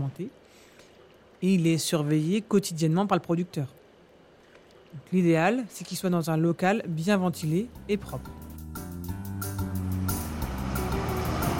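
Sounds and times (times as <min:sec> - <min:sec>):
speech: 0:00.1 - 0:00.7, 0:01.4 - 0:03.8, 0:04.9 - 0:08.4
milk collection truck engine rumbling as it arrives at a farm: 0:07.4 - 0:11.5.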